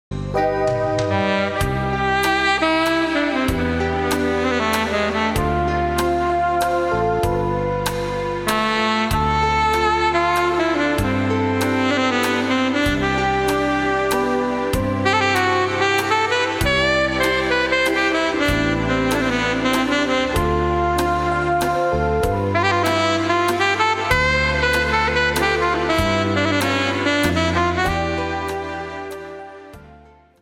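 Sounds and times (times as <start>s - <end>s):
saxophone: 0.2s - 30.1s.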